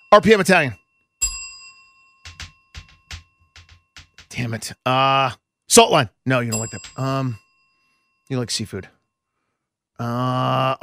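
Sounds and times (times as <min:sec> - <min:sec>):
bell ding for wrong answer: 0:00.0 - 0:04.4, 0:06.5 - 0:08.3
speech: 0:00.1 - 0:00.8, 0:04.4 - 0:07.4, 0:08.3 - 0:09.0, 0:10.0 - 0:10.8.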